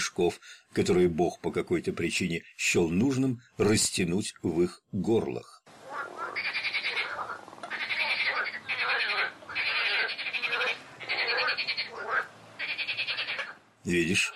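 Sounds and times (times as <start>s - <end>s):
speech: 0.1s - 5.6s, 13.8s - 14.3s
dense chorus of frogs croaking and trilling: 5.8s - 14.3s.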